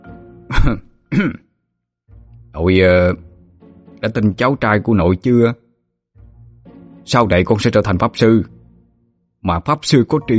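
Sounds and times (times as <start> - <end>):
seated person coughing: 0.5 - 1.5
speech: 0.6 - 1.5, 2.6 - 3.3, 4.0 - 5.6, 7.1 - 8.6, 9.4 - 10.3.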